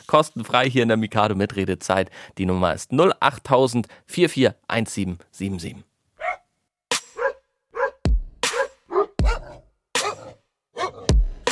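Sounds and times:
speech: 0:00.1 - 0:05.9
dog barking loudly: 0:06.2 - 0:06.4, 0:07.2 - 0:11.1.

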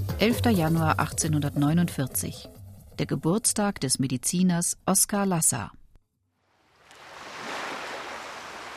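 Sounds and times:
speech: 0:00.2 - 0:05.8
ocean waves crashing onto the shore: 0:06.6 - 0:08.7.

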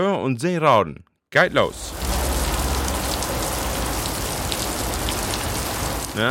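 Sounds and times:
speech: 0:00.0 - 0:02.0
dense steady rain turning into a downpour on a hard surface at a marksmen's festival: 0:01.5 - 0:06.3.

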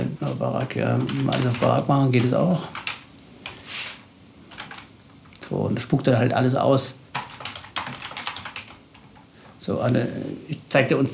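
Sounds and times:
speech: 0:00.2 - 0:02.9, 0:05.5 - 0:07.0, 0:09.7 - 0:11.1
rapid typing of a name on a computer keyboard: 0:00.6 - 0:03.6, 0:04.5 - 0:04.9, 0:07.1 - 0:09.6.

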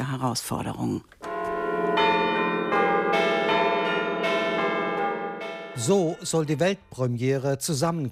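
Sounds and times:
speech: 0:00.0 - 0:01.2, 0:05.8 - 0:08.1
many church bells ringing together: 0:01.2 - 0:07.4.

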